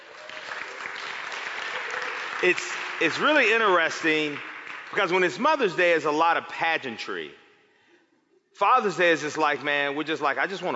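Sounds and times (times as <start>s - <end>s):
crowd applauding: 0.0s - 6.0s
speech: 2.4s - 7.4s, 8.6s - 10.7s.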